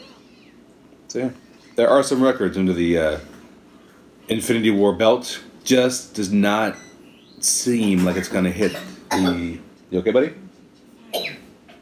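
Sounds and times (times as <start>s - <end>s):
speech: 1.1s - 3.3s, 4.3s - 6.8s, 7.4s - 10.4s
child coughing: 7.8s - 9.6s, 11.1s - 11.5s.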